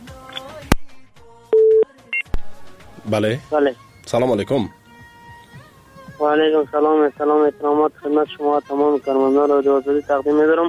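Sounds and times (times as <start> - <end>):
sharp clicks: 0.2 - 0.8
telephone tone beeps after a call is cut off: 1.5 - 2.4
speech: 3.1 - 4.8, 6.2 - 10.6.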